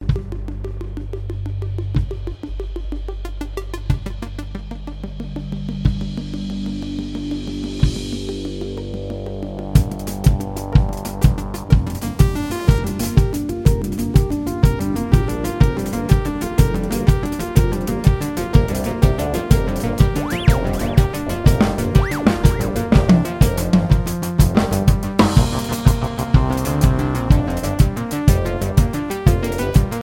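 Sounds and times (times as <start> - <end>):
synthesizer improvisation: 0.2 - 30.0.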